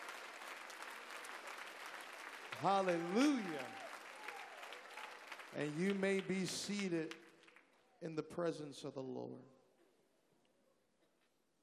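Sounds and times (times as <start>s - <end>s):
audience clapping hands in dense applause: 0.0s - 7.6s
speech: 2.6s - 3.8s, 5.5s - 7.2s, 8.0s - 9.6s.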